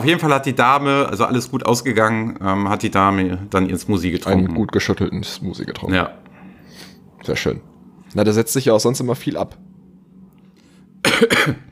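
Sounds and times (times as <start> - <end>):
speech: 0.0 - 6.2, 7.2 - 9.7, 11.1 - 11.6
faint low hum: 0.0 - 11.6
sharp raspy coughs: 11.0 - 11.6.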